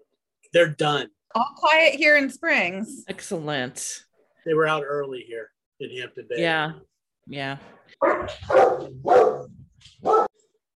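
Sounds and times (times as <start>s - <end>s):
speech: 0.5s - 10.3s
dogs barking: 8.0s - 10.5s.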